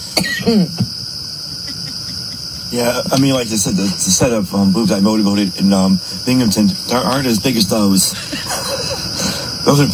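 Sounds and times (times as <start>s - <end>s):
people coughing in a replayed audio clip: 0.0s - 0.9s, 1.5s - 2.7s, 8.1s - 9.5s
faint hiss: 0.0s - 9.9s
speech: 0.2s - 1.0s, 2.7s - 9.0s, 9.7s - 9.9s
laughter: 0.7s - 5.1s, 7.9s - 9.6s.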